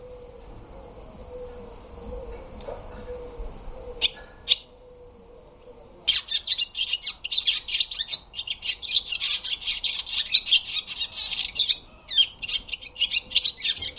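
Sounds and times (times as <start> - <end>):
barn swallow twittering: 1.3 - 5.2, 6.1 - 13.9.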